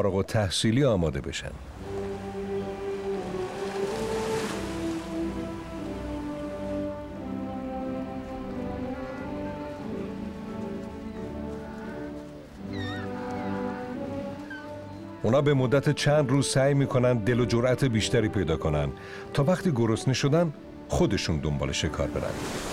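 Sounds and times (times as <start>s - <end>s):
speech: 0.0s - 1.9s, 15.2s - 22.7s
rough ocean waves washing onto the shore: 1.3s - 15.3s, 21.8s - 22.7s
animal calls: 8.4s - 15.2s.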